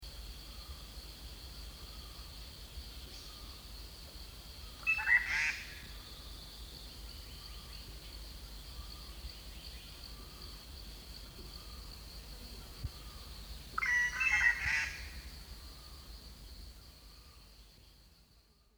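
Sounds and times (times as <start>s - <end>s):
green magpie calling: 13.8s - 15.2s.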